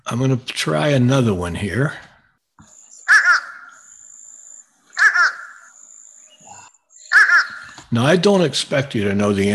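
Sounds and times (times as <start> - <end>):
speech: 0.1 - 2.1, 7.9 - 9.5
crow giving a nasal two-note uh-uh call: 2.9 - 7.9.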